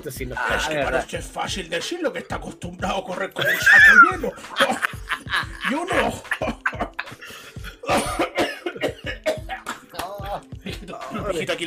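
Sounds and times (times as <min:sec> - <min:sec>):
speech: 0:00.0 - 0:06.5, 0:11.4 - 0:11.6
laughter: 0:03.4 - 0:11.3
elderly man with asthma coughing: 0:04.7 - 0:10.4
wheezy breaths of an elderly man with asthma: 0:07.0 - 0:07.9.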